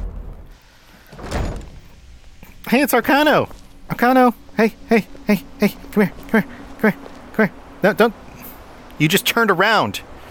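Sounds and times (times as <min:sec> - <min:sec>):
front door opening and closing: 0:00.0 - 0:02.6
low rumbling: 0:00.0 - 0:09.3
speech: 0:02.7 - 0:08.2, 0:09.0 - 0:10.1.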